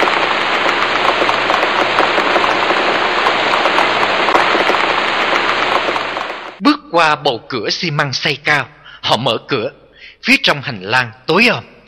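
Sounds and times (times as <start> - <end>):
steady rain falling outdoors: 0.0 - 6.6
speech: 7.0 - 11.7.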